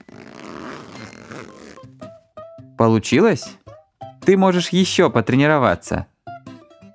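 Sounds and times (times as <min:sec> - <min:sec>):
zipper being zipped up: 0:00.0 - 0:01.9
speech: 0:02.8 - 0:03.6, 0:04.2 - 0:06.1.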